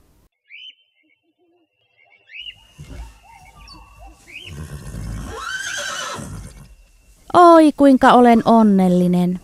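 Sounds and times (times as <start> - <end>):
bird chirps: 0.4 - 7.4
horse whinnying: 2.8 - 6.8
speech: 7.3 - 9.4.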